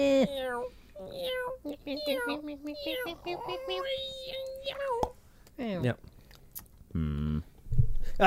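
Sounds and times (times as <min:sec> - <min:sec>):
person imitating a cat meow: 0:00.0 - 0:05.2
speech: 0:01.4 - 0:06.1, 0:06.9 - 0:07.2.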